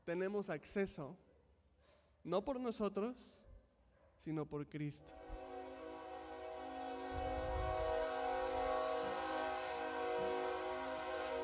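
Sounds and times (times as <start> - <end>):
speech: 0.1 - 1.3, 2.2 - 3.4, 4.2 - 5.4
passing train horn: 5.0 - 11.4.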